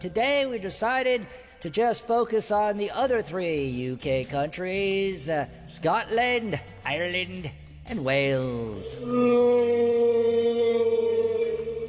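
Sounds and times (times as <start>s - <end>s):
speech: 0.0s - 11.0s
whale call: 9.1s - 11.8s.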